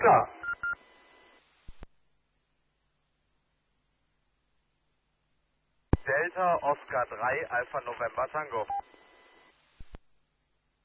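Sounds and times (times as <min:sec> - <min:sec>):
speech: 0:00.0 - 0:00.4, 0:06.1 - 0:08.9
faint steady beep: 0:00.4 - 0:00.8
short electronic telephone tone: 0:08.6 - 0:08.9.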